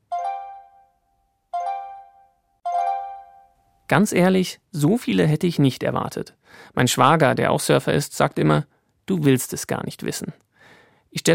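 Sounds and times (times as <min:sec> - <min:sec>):
smartphone app notification chime: 0:00.1 - 0:00.9, 0:01.6 - 0:03.6
speech: 0:03.9 - 0:10.4, 0:11.1 - 0:11.3.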